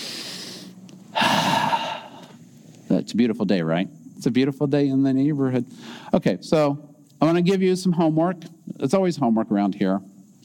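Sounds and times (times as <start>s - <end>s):
deep breath taken and let out: 0.0s - 2.4s, 5.7s - 6.2s
speech: 2.9s - 10.4s.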